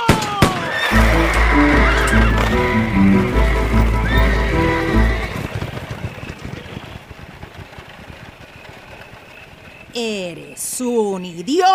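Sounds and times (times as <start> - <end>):
spooked horse whinnying: 0.4 - 7.0
spooked horse galloping off: 0.9 - 11.7
speech: 10.0 - 11.7.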